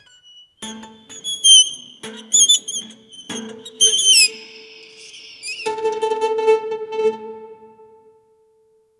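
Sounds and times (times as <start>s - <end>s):
sharp high staccato strings: 1.7s - 8.2s.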